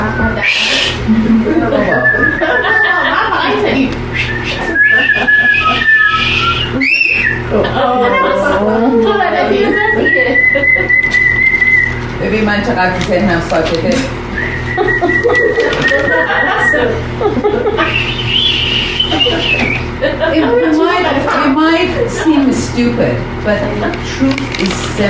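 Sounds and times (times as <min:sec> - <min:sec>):
person whistling in sustained wavering tones: 0:00.2 - 0:01.0, 0:01.9 - 0:02.4, 0:04.1 - 0:07.5, 0:10.0 - 0:12.0, 0:14.4 - 0:16.7, 0:17.8 - 0:19.9
laughter: 0:01.0 - 0:11.5, 0:14.4 - 0:22.7
speech: 0:12.5 - 0:14.5, 0:20.2 - 0:25.0.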